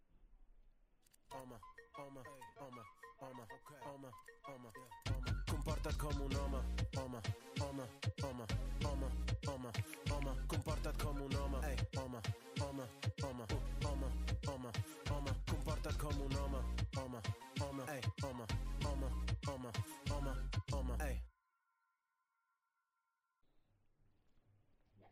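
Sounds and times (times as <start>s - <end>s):
upbeat music from a promotional presentation video: 1.3s - 21.2s.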